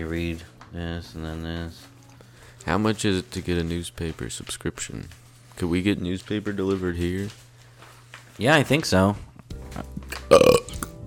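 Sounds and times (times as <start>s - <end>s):
speech: 0.0s - 2.0s, 2.6s - 7.4s, 8.4s - 10.6s
loud gurgling burp: 10.3s - 10.9s.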